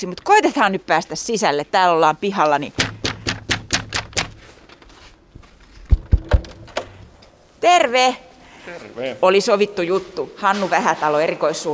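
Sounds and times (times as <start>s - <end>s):
speech: 0.0s - 3.0s, 7.6s - 11.7s
sharp knocks or taps: 2.7s - 4.5s, 5.8s - 7.2s
door of a government building unlatched and pulled open: 5.9s - 7.2s.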